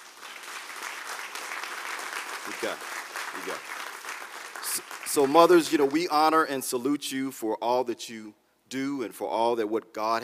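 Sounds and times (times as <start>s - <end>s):
audience applause: 0.0s - 6.1s
speech: 2.5s - 3.8s, 4.7s - 10.2s.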